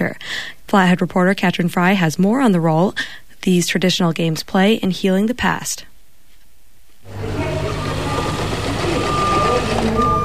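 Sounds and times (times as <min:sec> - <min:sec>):
speech: 0:00.1 - 0:05.9
rumbling construction engine: 0:07.1 - 0:10.2
sewing machine running: 0:07.1 - 0:10.2
high reversing beeps: 0:07.3 - 0:10.2.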